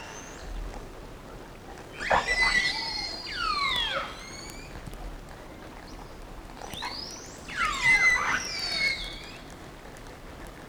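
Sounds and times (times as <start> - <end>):
whale whistles and squeals: 2.0 - 4.9, 6.6 - 9.5.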